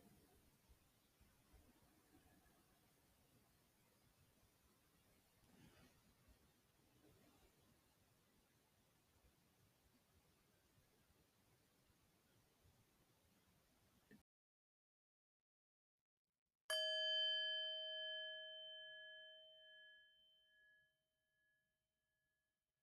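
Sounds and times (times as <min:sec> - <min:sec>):
bell ringing to close a meditation: 0:16.7 - 0:20.4.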